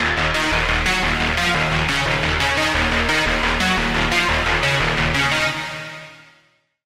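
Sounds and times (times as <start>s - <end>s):
synth lead: 0.0s - 6.0s.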